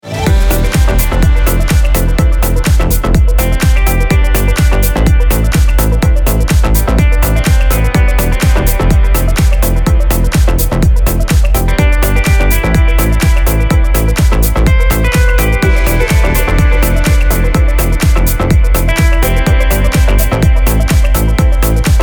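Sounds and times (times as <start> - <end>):
hoover synth solo: 0.0 - 22.0.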